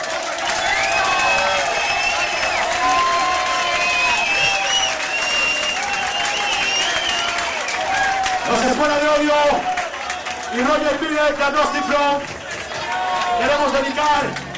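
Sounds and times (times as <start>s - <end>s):
audience applause at a live hardcore punk concert: 0.0s - 14.5s
shrill whistles from a concert crowd: 0.5s - 7.8s
speech: 10.6s - 12.3s, 13.4s - 14.4s.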